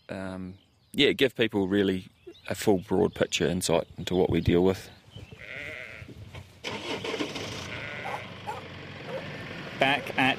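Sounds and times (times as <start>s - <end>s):
speech: 0.1s - 5.0s, 9.8s - 10.3s
lambs bleating in an implement shed converted into a lamb-rearing system: 5.4s - 6.2s, 7.1s - 8.3s.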